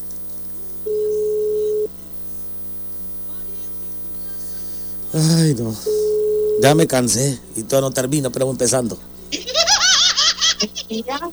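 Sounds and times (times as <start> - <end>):
telephone ringing tone of an outgoing call: 0.0 - 7.2
quiet telephone line noise: 0.0 - 9.5
speech: 5.2 - 9.1, 10.9 - 11.3
laughter: 9.3 - 11.3.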